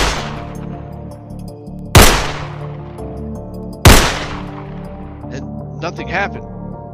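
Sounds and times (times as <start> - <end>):
gunshots fired from a fourble board platform: 0.0 - 0.6, 2.0 - 2.9, 3.8 - 4.9
speech: 5.8 - 6.6.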